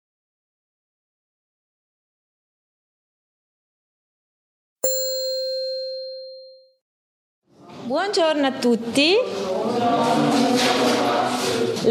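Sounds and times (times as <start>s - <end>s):
school bell chime: 4.8s - 6.8s
speech: 7.9s - 11.8s.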